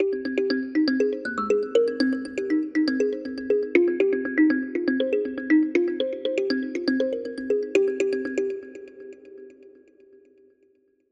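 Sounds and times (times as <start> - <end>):
melodic kalimba arpeggio: 0.0 - 8.5.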